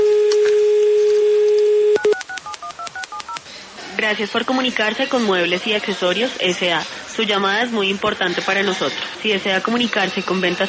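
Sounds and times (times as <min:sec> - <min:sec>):
steady telephone dial tone: 0:00.3 - 0:03.4
speech: 0:04.1 - 0:10.6.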